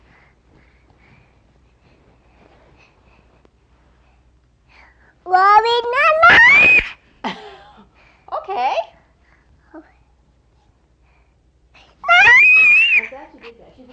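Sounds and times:
young child screaming shrilly: 6.0 - 7.0, 12.0 - 13.1.

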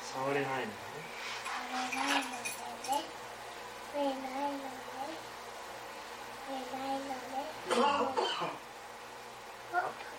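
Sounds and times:
household noise: 0.0 - 10.1
speech: 0.1 - 2.4
adult coughing: 7.7 - 8.6.

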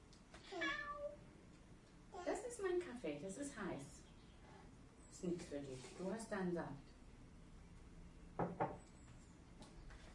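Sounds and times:
cat meowing: 0.5 - 1.2
speech: 2.6 - 4.0, 5.2 - 7.0.

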